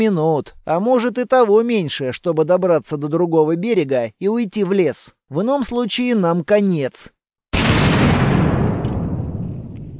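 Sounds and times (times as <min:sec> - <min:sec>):
speech: 0:00.0 - 0:07.2
explosion with deep rumbling roar: 0:07.6 - 0:09.9.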